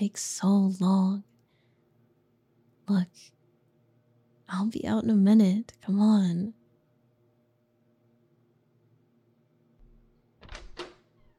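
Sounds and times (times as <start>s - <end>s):
speech: 0.0s - 1.3s, 2.9s - 3.4s, 4.5s - 6.6s
door latch and hinge noise as a door is opened: 9.8s - 11.3s.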